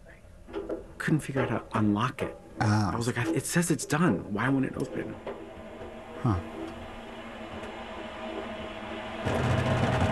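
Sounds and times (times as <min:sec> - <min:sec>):
new clothes dryer humming and rumbling: 0:00.4 - 0:10.1
speech: 0:01.0 - 0:05.3, 0:06.2 - 0:06.6, 0:09.2 - 0:09.6.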